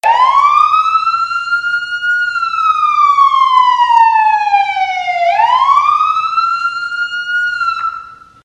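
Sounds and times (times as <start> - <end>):
wailing siren: 0.0 - 8.4.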